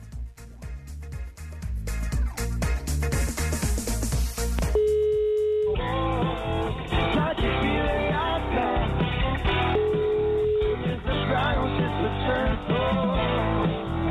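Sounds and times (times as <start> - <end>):
loud distorted music: 0.0 - 4.8, 5.7 - 14.1
telephone ringing tone while dialing a caller: 4.8 - 5.8, 9.7 - 10.9.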